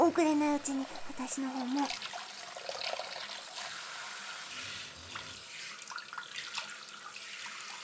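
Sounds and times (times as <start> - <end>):
speech: 0.2 - 2.1
hot water running from a tap: 0.8 - 7.8.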